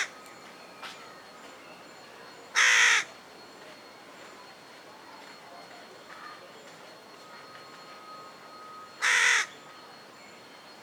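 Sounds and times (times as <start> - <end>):
Carrion crow cawing: 2.6 - 3.1, 9.0 - 9.5.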